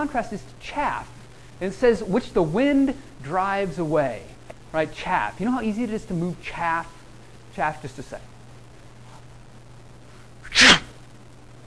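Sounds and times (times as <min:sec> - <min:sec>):
speech: 0:00.0 - 0:07.0, 0:07.6 - 0:08.3
quiet room hum: 0:00.0 - 0:11.6
person sneezing: 0:10.4 - 0:11.0.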